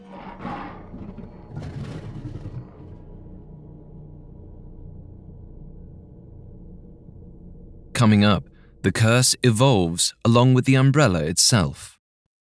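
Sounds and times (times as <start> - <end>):
lion roaring with deep powerful roar: 0.0 - 3.4
speech: 8.0 - 12.0.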